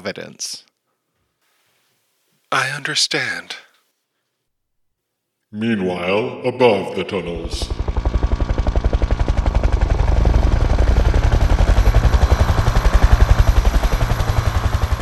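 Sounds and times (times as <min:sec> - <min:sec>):
speech: 0:00.0 - 0:00.7, 0:02.5 - 0:03.7, 0:05.5 - 0:07.9
fleet of helicopters hovering and landing around a dam: 0:07.3 - 0:15.0.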